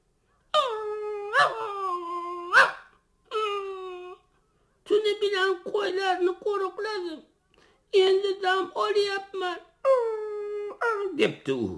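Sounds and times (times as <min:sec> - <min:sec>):
puppy whining: 0:00.5 - 0:04.4, 0:09.8 - 0:11.2
speech: 0:05.2 - 0:07.3, 0:07.9 - 0:10.0, 0:11.2 - 0:11.7.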